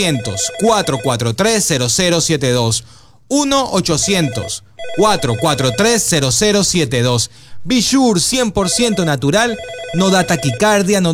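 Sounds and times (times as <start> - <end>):
telephone ringing after a toll-free number is dialed: 0.0 - 1.3, 4.0 - 6.2, 8.6 - 10.9
speech: 0.0 - 11.1.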